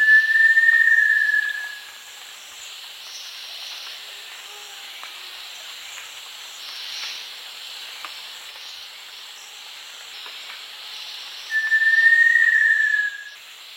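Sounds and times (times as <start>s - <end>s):
little tinamou whistle in the Eastern Lowlands, South America: 0.0s - 1.8s, 11.5s - 13.4s.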